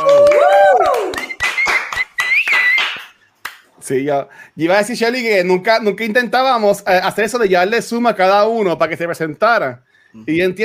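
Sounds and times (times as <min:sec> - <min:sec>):
voices cheering: 0:00.0 - 0:02.9
hands clapping: 0:00.0 - 0:03.8
speech: 0:03.9 - 0:10.6.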